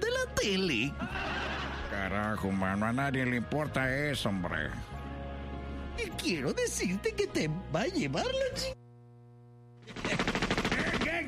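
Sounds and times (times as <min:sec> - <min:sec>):
speech: 0:00.4 - 0:04.9, 0:06.0 - 0:08.8
laughter: 0:01.0 - 0:02.4
rapid machine-gun-like gunfire: 0:09.8 - 0:11.2.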